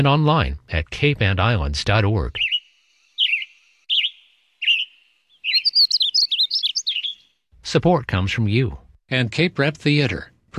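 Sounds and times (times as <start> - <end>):
speech: 0.0 - 2.5, 7.7 - 10.5
bird chirping and warbling: 2.3 - 7.4.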